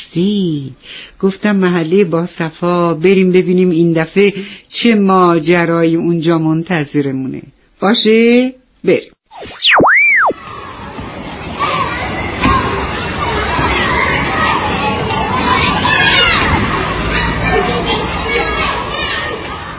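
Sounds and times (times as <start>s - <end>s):
speech: 0.1s - 9.8s
springy boing-like cartoon sound effect: 9.4s - 10.4s
children playing and shouting: 10.3s - 19.7s
crowd hubbub at an amusement park: 10.3s - 19.7s.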